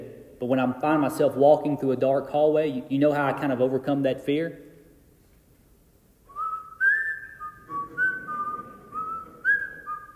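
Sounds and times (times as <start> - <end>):
speech: 0.4 - 4.6
person whistling a bouncy cheerful melody: 6.3 - 10.1.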